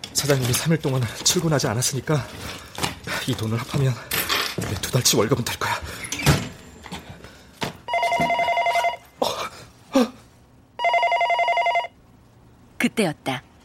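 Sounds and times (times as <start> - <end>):
speech: 0.2 - 6.0, 13.0 - 13.5
telephone bell ringing loudly: 7.9 - 9.1, 10.8 - 12.0.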